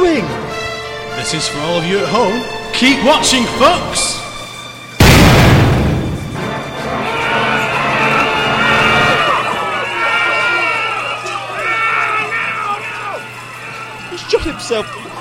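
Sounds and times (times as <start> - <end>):
speech: 1.2 - 4.2, 14.5 - 15.1
gunshot: 5.0 - 6.6
crowd screaming and shouting: 6.4 - 15.1.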